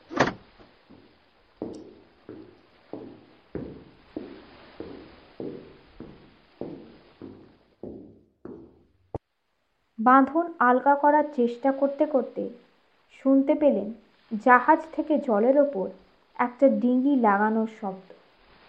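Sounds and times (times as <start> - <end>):
key locking a cabin door: 0.1 - 0.4
footsteps walking away on board a ship: 0.3 - 9.2
speech: 10.0 - 12.6, 13.2 - 18.2.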